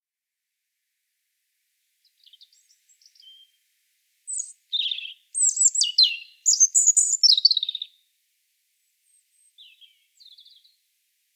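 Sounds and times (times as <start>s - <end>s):
European robin Erithacus rubecula song: 2.0s - 3.6s, 4.3s - 8.0s, 9.1s - 10.8s.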